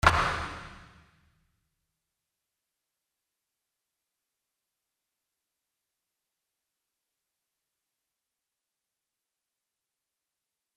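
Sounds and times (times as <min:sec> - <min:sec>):
sports hall ambience with good acoustics: 0:00.0 - 0:01.0.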